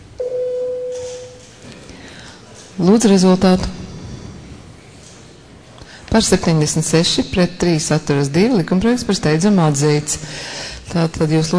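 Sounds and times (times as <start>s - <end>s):
electronic voting bell in parliament: 0.2s - 1.4s
low murmur in parliament: 1.4s - 3.0s, 3.7s - 6.2s
speech: 2.8s - 3.8s, 6.2s - 11.5s.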